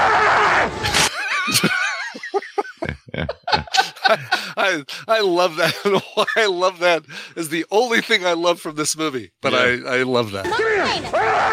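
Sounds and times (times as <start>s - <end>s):
short choppy bursts of laughter: 1.0s - 4.9s, 5.5s - 6.7s
speech: 1.5s - 1.8s, 4.1s - 11.5s
man in a film on a bike yelling angrily: 9.4s - 9.8s, 10.4s - 11.5s.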